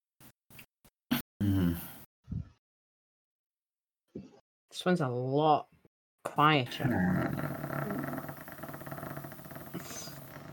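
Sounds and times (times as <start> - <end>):
speech: 4.8 - 7.5
person's throat rumbling imitating an idling car engine: 6.8 - 10.5.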